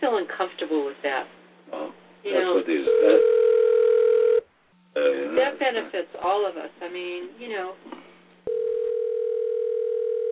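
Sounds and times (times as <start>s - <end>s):
speech: 0.1s - 3.4s, 5.4s - 8.0s
steady telephone dial tone on a line calling a cell phone: 2.9s - 4.4s, 8.5s - 10.2s.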